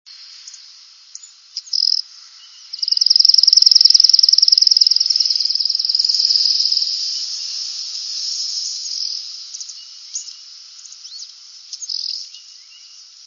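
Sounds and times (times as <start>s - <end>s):
sparrow song: 0.4s - 13.1s
sparrow chipping: 2.8s - 6.9s.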